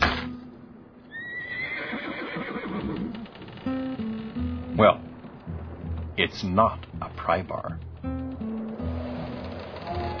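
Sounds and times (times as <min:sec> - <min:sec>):
war horse whinnying: 0:01.1 - 0:03.4
low rumble: 0:02.8 - 0:10.1
speech: 0:04.8 - 0:05.0, 0:06.2 - 0:08.2.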